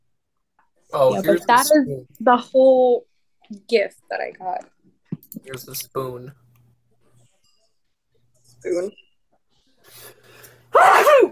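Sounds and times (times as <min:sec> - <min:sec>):
speech: 0:00.9 - 0:04.8, 0:05.4 - 0:06.4, 0:08.6 - 0:09.0
person sneezing: 0:10.7 - 0:11.3.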